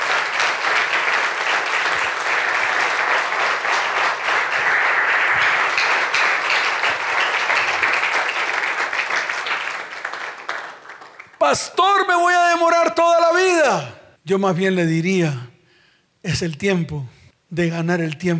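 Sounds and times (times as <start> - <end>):
large audience applauding at a religious service: 0.0 - 11.5
speech: 11.5 - 15.5, 16.2 - 18.3.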